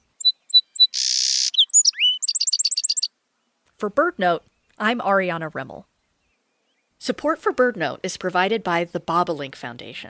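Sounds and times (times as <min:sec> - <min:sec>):
song sparrow singing: 0:00.0 - 0:03.6, 0:05.9 - 0:07.0
speech: 0:03.8 - 0:05.9, 0:07.0 - 0:10.0.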